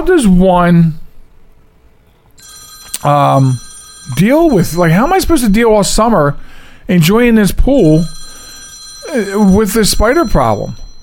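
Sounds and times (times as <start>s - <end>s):
speech: 0.0s - 1.0s, 3.0s - 8.2s, 9.1s - 10.8s
telephone ringing with an electronic trill: 2.4s - 5.9s, 7.7s - 11.0s.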